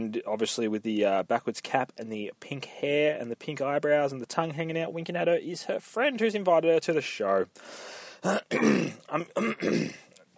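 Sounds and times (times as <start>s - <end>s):
speech: 0.0s - 10.0s
person clearing throat: 8.2s - 10.1s
short coughs: 8.2s - 10.1s.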